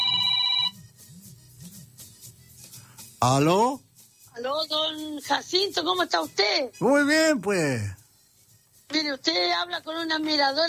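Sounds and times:
telephone ringing: 0:00.0 - 0:00.8
speech: 0:03.2 - 0:08.0, 0:08.9 - 0:10.6.

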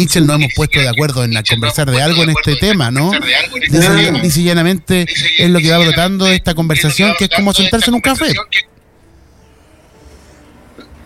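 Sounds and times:
speech: 0:00.0 - 0:08.7
person coughing from a cough of a few days: 0:03.8 - 0:04.3.

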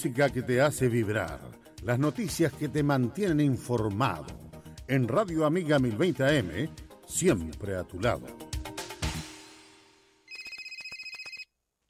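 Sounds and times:
speech: 0:00.0 - 0:08.4
phone ringing from an incoming call: 0:10.3 - 0:11.5.

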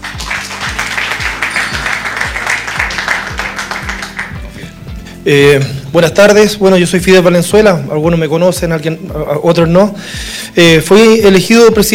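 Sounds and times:
crowd clapping: 0:00.0 - 0:04.9
low thumping beat: 0:00.0 - 0:11.9
speech: 0:05.2 - 0:11.9.

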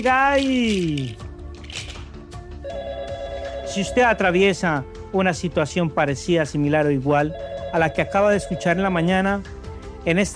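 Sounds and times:
speech: 0:00.0 - 0:01.8, 0:03.7 - 0:10.3
telephone ringing with an incoming call to a radio show: 0:02.6 - 0:04.4, 0:07.2 - 0:09.0.

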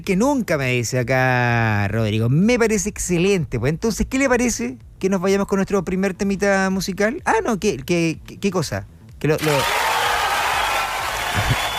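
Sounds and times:
speech: 0:00.0 - 0:09.8
crowd applauding: 0:09.4 - 0:11.7.

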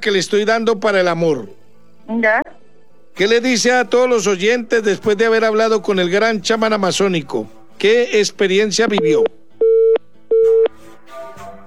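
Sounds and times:
speech: 0:00.0 - 0:02.6, 0:03.2 - 0:09.4
telephone busy tone on a dropped live call: 0:09.0 - 0:10.7.

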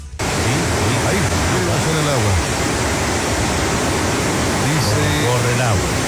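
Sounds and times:
people talking: 0:00.2 - 0:02.6, 0:04.4 - 0:06.0
rushing river roar from a played video: 0:00.2 - 0:06.0.

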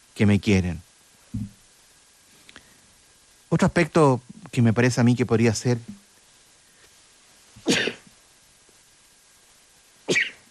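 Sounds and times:
speech: 0:00.2 - 0:01.6, 0:03.5 - 0:06.0
person sneezing: 0:07.6 - 0:08.1, 0:10.1 - 0:10.4.

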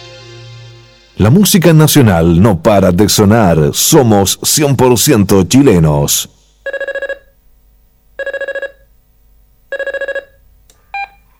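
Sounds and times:
speech: 0:01.2 - 0:06.8
telephone ringing with rapid electronic trilling: 0:06.7 - 0:07.3, 0:08.2 - 0:08.9, 0:09.7 - 0:10.4.

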